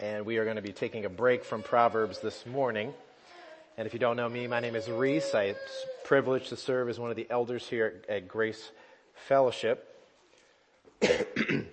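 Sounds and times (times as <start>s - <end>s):
speech: 0.2s - 3.1s, 3.8s - 9.9s, 11.0s - 11.3s
rough coughs: 11.0s - 11.7s.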